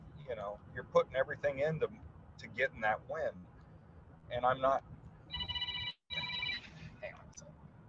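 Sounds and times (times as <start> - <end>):
speech: 0.3 - 3.5, 4.3 - 5.0
telephone ringing: 5.3 - 6.8.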